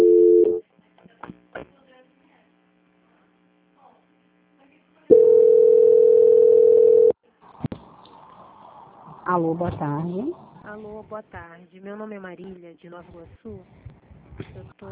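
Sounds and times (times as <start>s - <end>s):
telephone line tone during call transfer: 0.0s - 0.6s, 5.1s - 7.2s
speech: 9.4s - 13.9s, 14.5s - 14.9s.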